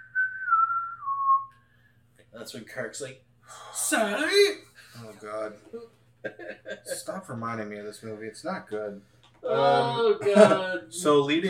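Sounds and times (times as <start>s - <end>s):
person imitating a zombie whistling a tune: 0.0s - 1.5s
speech: 2.4s - 11.4s
laughter: 5.0s - 7.4s, 9.4s - 11.4s.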